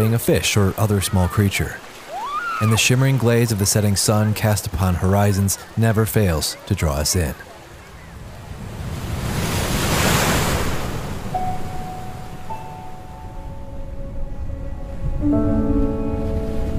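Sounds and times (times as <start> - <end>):
speech: 0.0 - 2.0, 2.6 - 7.5
ocean waves rolling in: 0.0 - 16.7
soft sustained tones: 11.3 - 16.7.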